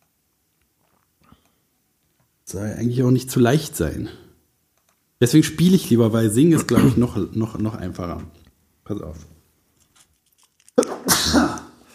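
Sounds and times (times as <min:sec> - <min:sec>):
speech: 0:02.5 - 0:04.2, 0:05.2 - 0:09.4
person sneezing: 0:10.8 - 0:11.9.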